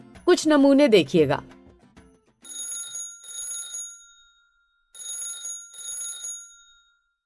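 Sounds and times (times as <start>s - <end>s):
speech: 0.3s - 1.6s
telephone ringing in double bursts of buzzy trills: 2.4s - 7.2s.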